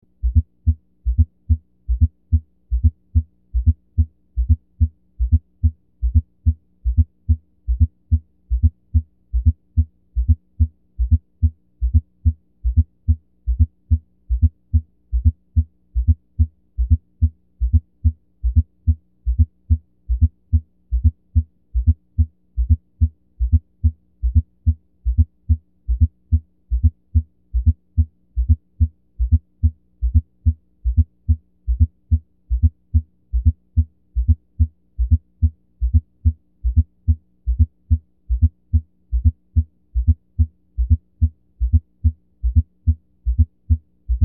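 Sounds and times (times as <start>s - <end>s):
S4 heart sound at apex in left lateral decubitus through stethoscope bell: 0.2s - 44.2s.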